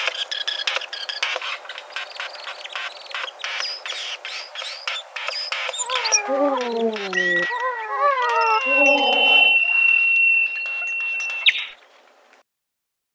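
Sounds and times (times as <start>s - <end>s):
male Regent Bowerbird scratchy clicks and rasps: 0.0s - 11.8s
Regent Bowerbird squeaky whistles: 1.9s - 11.8s
speech: 6.3s - 7.3s.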